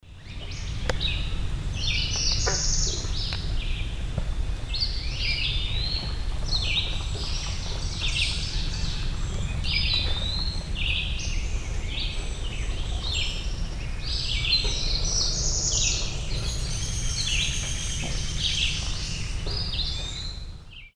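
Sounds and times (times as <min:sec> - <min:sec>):
Northern Parula song resembling Cerulean Warbler: 0:00.0 - 0:20.9.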